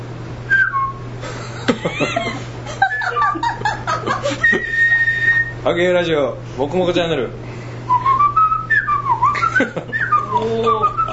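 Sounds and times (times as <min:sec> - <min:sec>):
person whistling a short wavering tune: 0:00.5 - 0:01.1, 0:04.3 - 0:05.6, 0:07.9 - 0:11.1
chuckling laughter: 0:01.2 - 0:04.9, 0:09.4 - 0:11.1
speech: 0:01.7 - 0:02.5, 0:05.6 - 0:07.4, 0:09.6 - 0:10.9.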